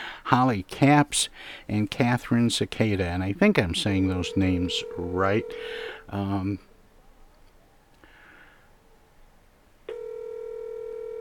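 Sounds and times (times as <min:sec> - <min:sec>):
quiet noise: 0:00.0 - 0:11.1
speech: 0:00.3 - 0:06.7
telephone ring tone heard through a phone line: 0:04.0 - 0:06.1, 0:09.9 - 0:11.1.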